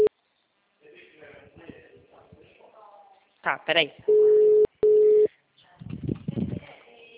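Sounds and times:
speech: 3.4 - 4.3
telephone call tones while calling someone: 4.1 - 5.3.

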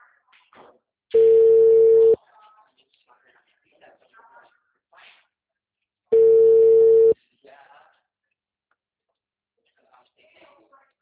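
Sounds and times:
telephone line beeps on a call to a busy service line: 1.2 - 2.2, 6.2 - 7.2.

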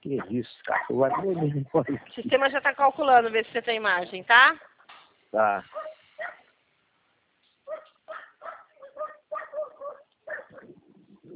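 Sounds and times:
speech: 0.1 - 4.7, 5.3 - 6.4
dog barking and whimpering over a phone: 0.2 - 2.1, 5.7 - 6.5, 7.7 - 10.8.

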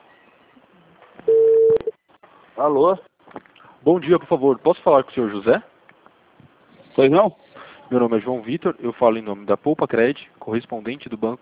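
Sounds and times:
steady mid-pitched telephone tone: 1.3 - 1.9
speech: 2.6 - 3.1, 3.8 - 5.7, 7.0 - 11.3.

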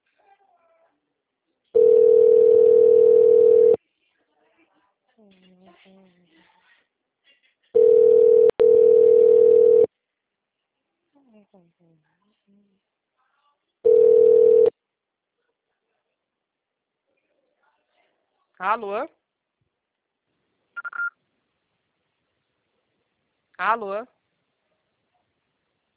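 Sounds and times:
telephone ringback tone while calling back after being hung up on: 1.8 - 3.8, 7.8 - 9.9, 13.9 - 14.7
speech: 18.6 - 19.2, 23.6 - 24.2.

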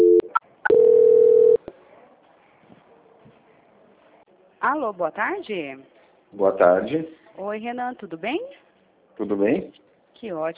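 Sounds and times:
telephone dual tone during a call transfer: 0.0 - 1.6
speech: 4.6 - 8.6, 9.2 - 10.5.

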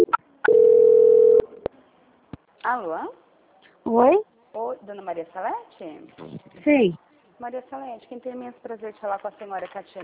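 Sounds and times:
telephone call transfer tone: 0.0 - 1.6
speech: 2.7 - 3.2, 3.8 - 10.0.

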